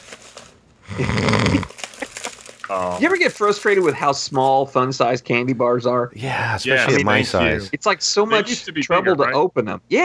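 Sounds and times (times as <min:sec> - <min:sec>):
person imitating a loud rough rattling snore: 0:00.8 - 0:01.7
speech: 0:01.0 - 0:01.8, 0:02.7 - 0:10.0.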